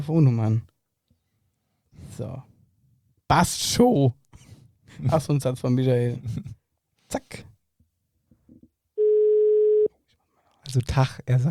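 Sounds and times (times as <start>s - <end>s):
speech: 0.0s - 0.7s, 2.1s - 2.5s, 3.3s - 4.2s, 4.9s - 7.5s, 10.7s - 11.4s
telephone ringback tone while calling someone: 9.0s - 9.9s.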